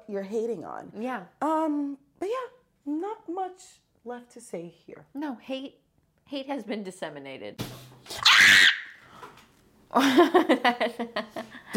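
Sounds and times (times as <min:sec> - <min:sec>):
speech: 0:00.1 - 0:08.7, 0:09.9 - 0:11.7
person screaming: 0:08.2 - 0:09.0.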